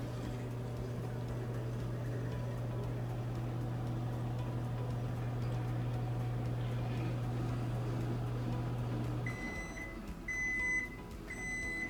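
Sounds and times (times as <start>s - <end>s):
microwave oven humming: 0.0s - 11.8s
microwave oven done beeps: 8.7s - 11.8s.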